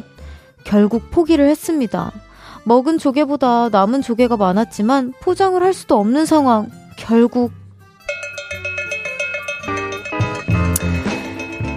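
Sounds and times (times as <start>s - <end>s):
speech: 0.7s - 7.6s
bell ringing rapidly: 8.1s - 11.7s.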